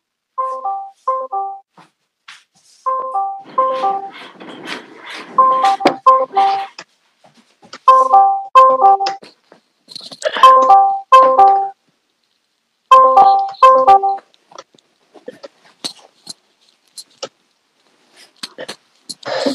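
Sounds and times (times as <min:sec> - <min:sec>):
phone ringtone chime of an unanswered outgoing call: 0:00.4 - 0:01.6, 0:02.9 - 0:04.1, 0:05.4 - 0:06.7, 0:07.9 - 0:09.2, 0:10.4 - 0:11.8, 0:12.9 - 0:14.2.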